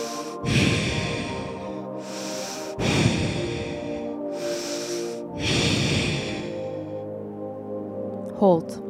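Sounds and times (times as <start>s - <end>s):
slow deep breathing during a guided breathing exercise: 0.0s - 7.5s
speech: 8.4s - 8.8s.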